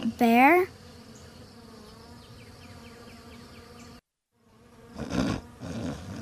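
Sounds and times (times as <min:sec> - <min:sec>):
bees buzzing: 0:00.0 - 0:06.1
speech: 0:00.2 - 0:00.8.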